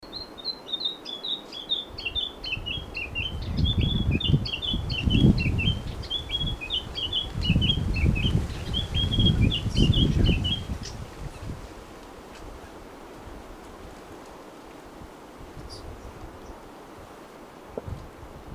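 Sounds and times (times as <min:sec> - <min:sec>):
bird chirping in Papua New Guinea: 0:00.0 - 0:11.0.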